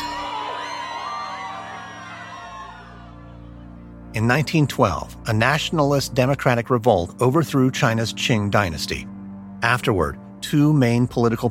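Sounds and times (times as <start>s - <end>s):
crowd of spectators screaming in fright: 0.0s - 3.8s
speech: 4.2s - 11.4s.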